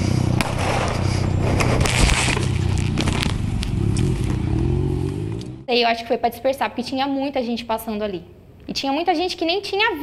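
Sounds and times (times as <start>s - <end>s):
motorcycle engine rumbling: 0.0s - 5.9s
busy street noise: 0.0s - 10.0s
gunshot fired into the air: 0.4s - 1.2s
speech: 5.7s - 10.0s.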